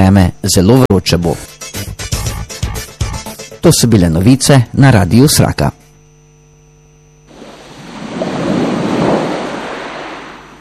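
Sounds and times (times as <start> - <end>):
speech: 0.0 - 1.7, 3.6 - 5.8
sea wave surf in a radio station jingle: 7.3 - 10.5.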